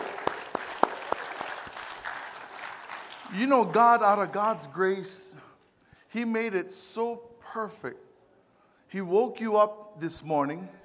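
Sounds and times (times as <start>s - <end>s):
congregation clapping: 0.0s - 5.2s
speech: 3.3s - 5.4s, 6.1s - 8.1s, 8.9s - 10.8s.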